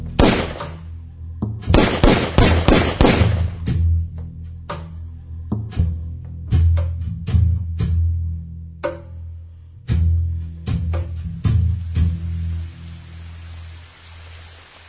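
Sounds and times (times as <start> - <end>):
low rumble: 0.0 - 13.4
rapid loud volley of gunshots: 0.2 - 0.9, 1.7 - 3.7.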